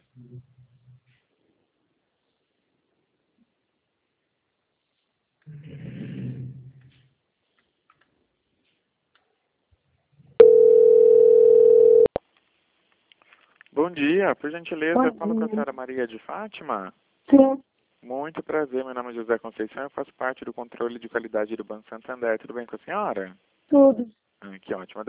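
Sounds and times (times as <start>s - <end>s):
steady electronic telephone tone while a bank call is transferred: 10.4s - 12.2s
speech: 13.9s - 25.0s.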